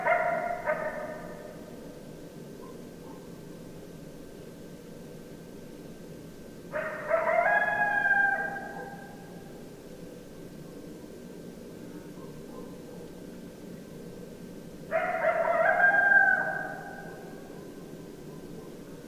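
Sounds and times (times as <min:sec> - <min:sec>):
several coyotes howling in a chorus: 0:00.0 - 0:01.6, 0:06.7 - 0:09.5, 0:14.9 - 0:19.0.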